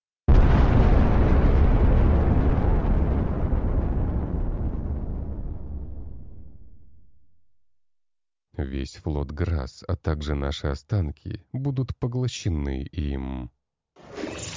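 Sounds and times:
planet exploding in a massive blast: 0.3 - 7.4
speech: 8.6 - 14.2.

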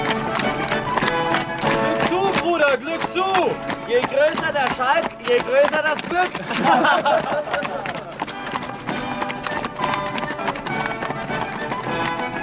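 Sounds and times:
two horses' hooves clip-clopping: 0.0 - 12.4
speech: 2.8 - 8.1
laughter: 6.0 - 8.3.

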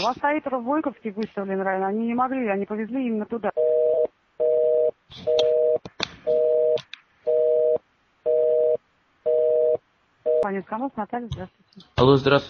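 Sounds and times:
speech: 0.0 - 4.0, 5.1 - 6.6, 10.4 - 12.4
telephone busy tone after a dropped call: 3.6 - 10.4.

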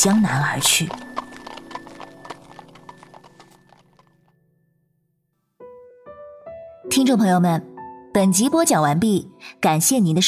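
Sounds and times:
speech: 0.0 - 1.1, 6.9 - 10.2
horse hooves clip-clopping from a fast horse-drawn carriage: 0.0 - 4.3.

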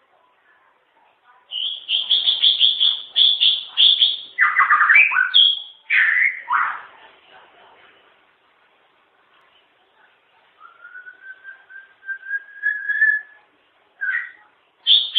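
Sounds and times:
white-rumped shama song with loud whistled and slurred notes: 1.5 - 6.7, 10.6 - 13.4, 14.0 - 15.1.

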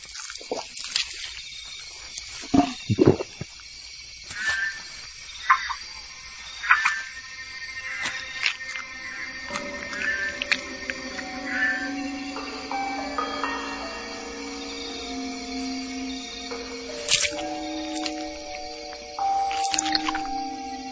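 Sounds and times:
steady high insect-like hiss: 0.0 - 20.9
Pac-Man frog croaking and chirping at night: 5.4 - 20.9.

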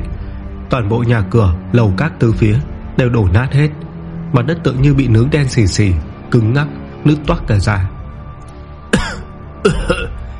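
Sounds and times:
speech: 0.7 - 7.9
person pinned under a heavy stone amid ruins coughing violently: 8.9 - 10.2.

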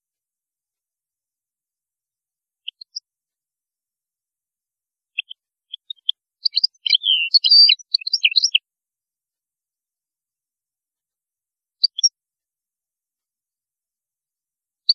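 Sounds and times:
European goldfinch singing: 5.2 - 8.6, 11.8 - 12.1.

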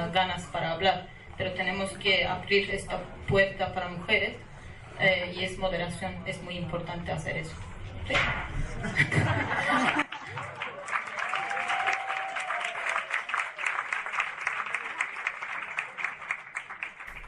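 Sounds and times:
speech: 0.0 - 10.6
laughter: 8.6 - 10.8
audience applauding a speaker at a talk: 9.7 - 17.2.

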